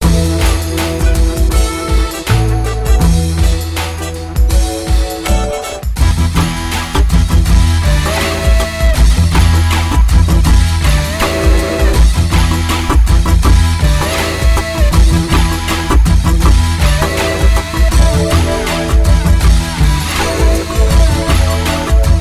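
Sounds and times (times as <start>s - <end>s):
energetic hype double music loop: 0.0s - 22.2s.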